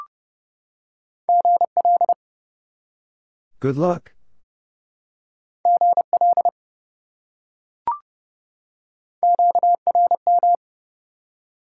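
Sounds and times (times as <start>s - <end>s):
fast Morse code beeping sending amateur radio contact elements: 1.3s - 2.2s, 5.7s - 6.5s, 9.2s - 10.6s
speech: 3.6s - 4.2s.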